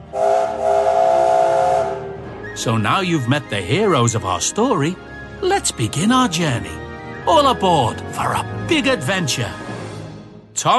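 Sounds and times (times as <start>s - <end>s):
steam engine whistle: 0.0s - 2.6s
speech: 2.6s - 9.6s, 10.6s - 10.7s.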